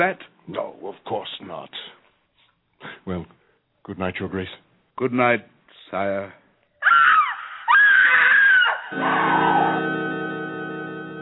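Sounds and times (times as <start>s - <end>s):
speech: 0.0s - 2.0s, 2.8s - 6.4s, 8.9s - 9.9s
woman screaming and wailing: 6.8s - 9.8s.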